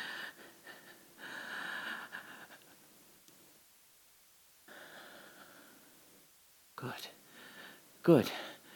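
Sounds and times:
heavy breathing to calm down: 0.0s - 2.8s, 4.7s - 6.0s, 7.2s - 8.7s
speech: 8.0s - 8.4s.

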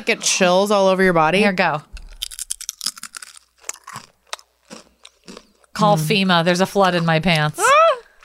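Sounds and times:
speech: 0.0s - 1.9s, 5.8s - 7.7s
chewing a crunchy chip: 2.0s - 5.8s.

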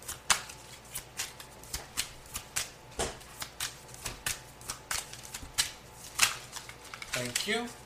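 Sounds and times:
tarot cards being shuffled and drawn from a deck: 0.0s - 7.8s
speech: 7.2s - 7.8s.

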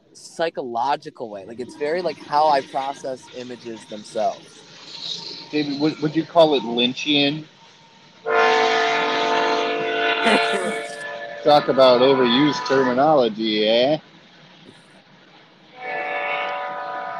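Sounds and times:
laughter: 0.2s - 4.4s, 5.6s - 7.4s, 10.3s - 14.0s
speech: 0.2s - 4.6s, 5.5s - 7.5s, 10.2s - 10.7s, 11.4s - 14.1s
passing train horn blasts: 8.3s - 13.6s, 15.7s - 17.1s.

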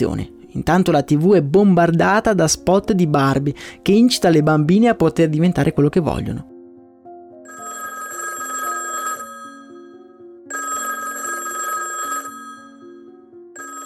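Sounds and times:
speech: 0.0s - 6.5s
office telephone ringing: 7.5s - 13.8s.

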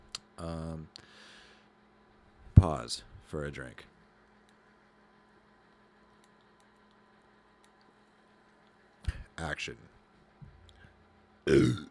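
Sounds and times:
speech: 0.4s - 1.3s, 2.6s - 3.9s, 9.4s - 10.0s
loud rumbling raspy burp: 11.5s - 11.9s.

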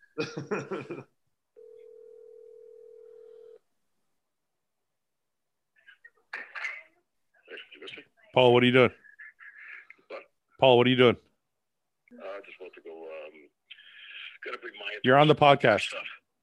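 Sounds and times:
speech: 0.2s - 1.2s, 8.4s - 9.0s, 10.6s - 11.3s, 14.5s - 16.4s
steady electronic phone ring tone of a call being placed: 1.6s - 3.6s.

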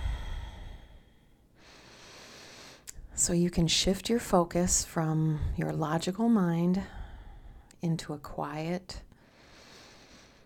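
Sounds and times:
slow deep breath during a guided meditation: 0.0s - 2.9s, 6.8s - 7.7s, 9.2s - 10.4s
speech: 3.2s - 7.0s, 7.8s - 9.1s.

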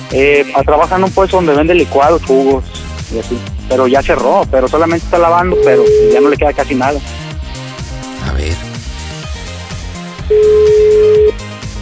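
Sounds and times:
speech: 0.1s - 7.2s
low sound: 0.2s - 8.7s
phone call voicemail beep tone: 5.2s - 6.8s, 10.3s - 11.3s.

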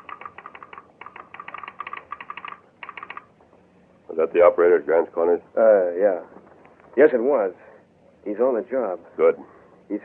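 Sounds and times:
telegraph sounder clicking in a telegraph office: 0.0s - 3.3s
speech: 4.2s - 6.4s, 7.0s - 7.6s, 8.2s - 10.0s.

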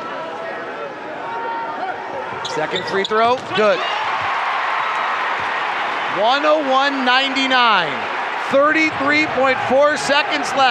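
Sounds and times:
speech: 2.5s - 4.1s, 6.2s - 10.6s
arena crowd at a basketball game roaring: 3.6s - 10.6s.

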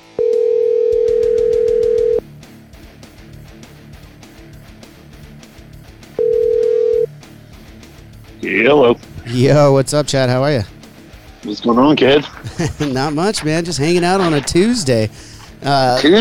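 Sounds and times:
rhythmic music: 0.0s - 16.1s
outgoing phone call ringback tone buzz: 0.1s - 2.2s, 6.2s - 7.1s
speech: 8.5s - 10.7s, 11.4s - 16.1s
laughter: 11.6s - 16.1s.

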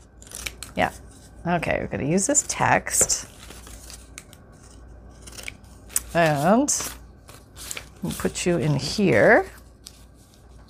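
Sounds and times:
speech: 0.8s - 3.4s, 6.1s - 7.0s, 8.0s - 9.6s
scalloped craft scissors cutting paper: 3.7s - 7.0s.

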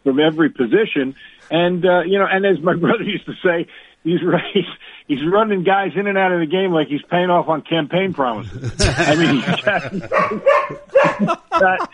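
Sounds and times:
speech: 0.0s - 11.9s
laughter: 8.3s - 11.9s
dog barking: 10.1s - 11.5s.

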